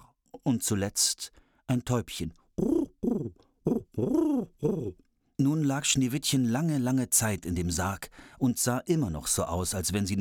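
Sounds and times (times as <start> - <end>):
speech: 0.4 - 2.8, 4.0 - 10.1
owl hooting: 2.6 - 5.0.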